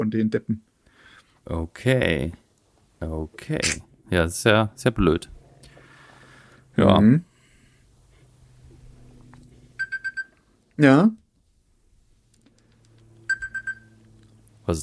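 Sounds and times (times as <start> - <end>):
speech: 0.0 - 0.7, 1.4 - 2.4, 3.0 - 5.4, 6.8 - 7.3, 10.8 - 11.2
bright rapid electronic ringing: 9.8 - 10.4, 13.2 - 14.0.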